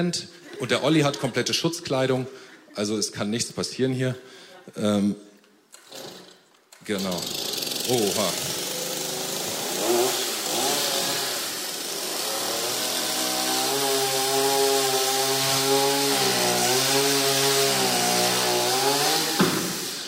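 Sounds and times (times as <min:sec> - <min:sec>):
speech: 0:00.0 - 0:05.3, 0:06.8 - 0:08.5
laughter: 0:00.3 - 0:01.8
motorized saw cutting through an object: 0:06.9 - 0:20.0.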